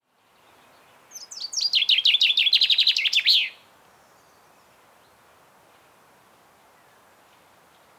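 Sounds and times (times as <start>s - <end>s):
common chaffinch Fringilla coelebs singing: 1.1s - 3.6s.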